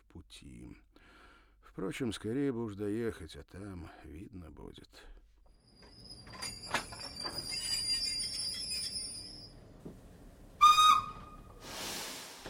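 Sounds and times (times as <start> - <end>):
speech: 0.2 - 1.0, 1.7 - 5.2
train brakes screeching as the train slows: 5.7 - 9.6, 10.6 - 12.4
hiss of air from train brakes: 11.6 - 12.4.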